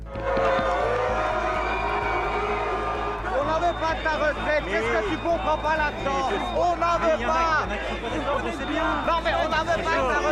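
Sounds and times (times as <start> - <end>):
protest crowd booing and shouting: 0.0 - 10.3
speech: 4.0 - 10.3.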